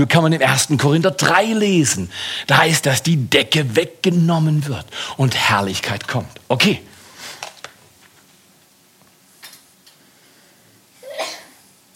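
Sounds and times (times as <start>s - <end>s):
speech: 0.0s - 6.9s
sneeze: 11.0s - 11.7s.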